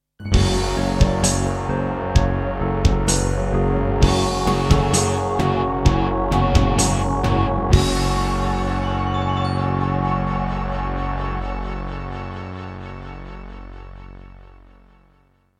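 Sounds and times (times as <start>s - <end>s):
Akai SG01k synthesizer music: 0.3s - 15.1s.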